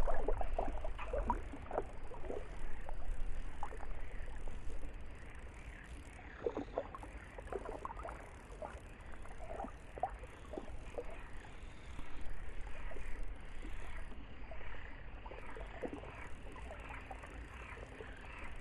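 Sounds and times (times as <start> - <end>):
low steady hum: 0.0 - 18.6
soft water lapping on a still lake at night: 0.0 - 18.6.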